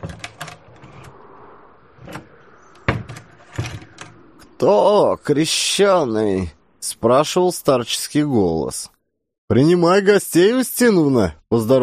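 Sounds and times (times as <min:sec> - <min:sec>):
door creaking open quietly: 0:00.0 - 0:04.6
speech: 0:04.6 - 0:11.8.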